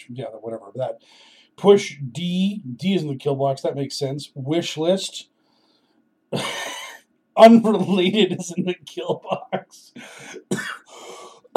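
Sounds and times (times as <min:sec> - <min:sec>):
speech: 0:00.0 - 0:05.3, 0:06.3 - 0:06.6, 0:07.4 - 0:11.5
person coughing: 0:10.0 - 0:11.5.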